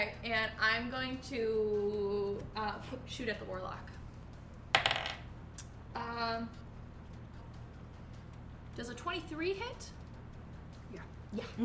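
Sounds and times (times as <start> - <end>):
speech: 0.2 - 4.0, 6.0 - 6.6, 8.8 - 10.0, 10.9 - 11.6
dice rolling on a table during a tabletop role-playing game: 4.7 - 5.3.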